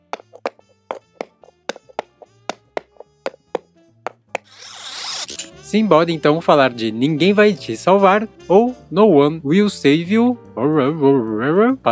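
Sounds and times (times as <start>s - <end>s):
horse galloping with hollow hoofbeats: 0.0s - 4.3s
speech: 5.7s - 11.9s.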